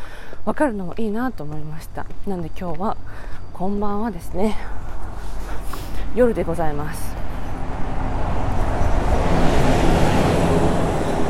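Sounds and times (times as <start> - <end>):
speech: 0.4 - 4.8, 6.1 - 7.2
bus rumbling past at night: 4.2 - 11.2.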